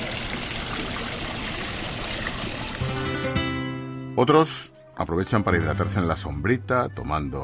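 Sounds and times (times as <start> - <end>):
water trickling and splashing from a public fountain: 0.0 - 3.0
speech: 4.2 - 7.4.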